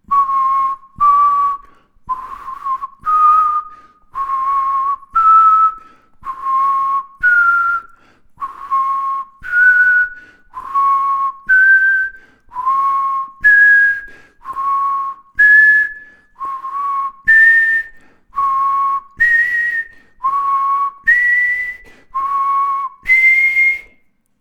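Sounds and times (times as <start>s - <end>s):
person whistling chromatic tone intervals in a bathroom: 0.0s - 24.2s.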